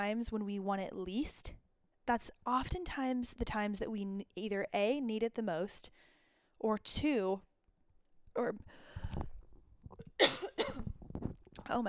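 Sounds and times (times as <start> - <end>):
speech: 0.0 - 7.5, 8.4 - 9.3, 11.7 - 11.8
person coughing: 10.2 - 11.0.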